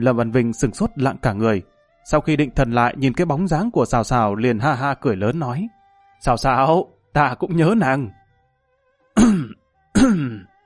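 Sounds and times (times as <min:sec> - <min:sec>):
speech: 0:00.0 - 0:08.2, 0:09.2 - 0:10.5
deliberate fake coughs: 0:09.2 - 0:10.5.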